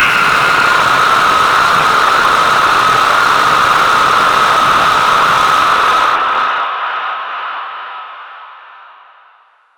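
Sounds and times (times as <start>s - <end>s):
distorted fear sound effect for horror: 0.0s - 7.2s.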